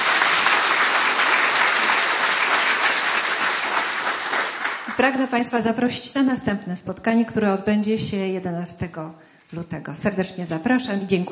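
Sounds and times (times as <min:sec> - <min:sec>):
room full of people applauding: 0:00.0 - 0:05.0
speech: 0:05.0 - 0:11.2.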